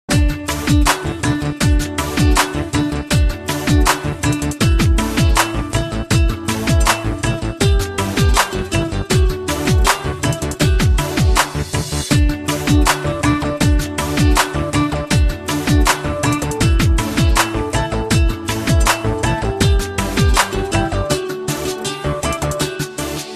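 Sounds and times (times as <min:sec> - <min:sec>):
guitar tone: 0:00.1 - 0:23.3.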